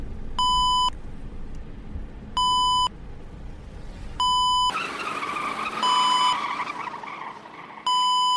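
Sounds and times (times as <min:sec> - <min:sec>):
road noise: 0:00.0 - 0:08.3
rumbling vehicle engine: 0:00.0 - 0:08.3
electronic warning beeps inside a passenger vehicle: 0:00.4 - 0:00.9, 0:02.4 - 0:02.9, 0:04.2 - 0:04.7, 0:05.8 - 0:06.4, 0:07.9 - 0:08.3.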